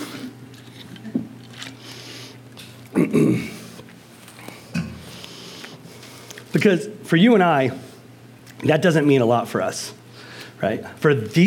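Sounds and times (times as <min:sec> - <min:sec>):
person drinking water: 0:00.0 - 0:06.5
low hum: 0:00.0 - 0:11.4
speech: 0:03.0 - 0:03.6, 0:06.5 - 0:07.8, 0:08.6 - 0:10.0, 0:10.6 - 0:11.4.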